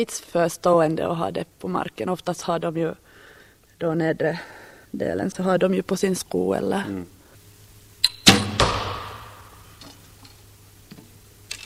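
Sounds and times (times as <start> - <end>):
speech: 0.0 - 3.0, 3.8 - 7.2
arrows striking an archery target: 8.2 - 9.6.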